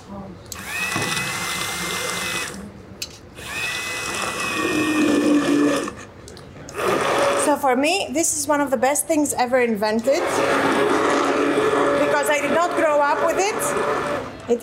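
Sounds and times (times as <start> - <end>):
speech: 0.1 - 0.6, 7.7 - 11.0, 12.3 - 14.6
handheld blender pureeing cooked split peas: 0.6 - 2.6, 3.4 - 6.0, 6.7 - 7.6, 10.1 - 14.5.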